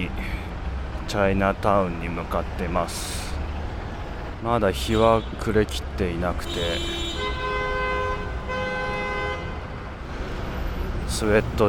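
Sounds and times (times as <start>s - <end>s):
street traffic roar: 0.0s - 11.6s
speech: 1.1s - 3.2s, 4.4s - 7.4s, 11.2s - 11.6s
car horns honking in street traffic: 4.8s - 5.5s, 6.2s - 9.8s.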